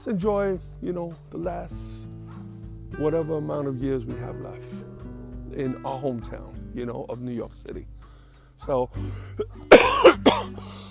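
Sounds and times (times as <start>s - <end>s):
speech: 0.0s - 2.0s, 2.9s - 4.9s, 5.5s - 7.9s, 8.6s - 10.8s
person coughing from allergies: 9.2s - 10.8s.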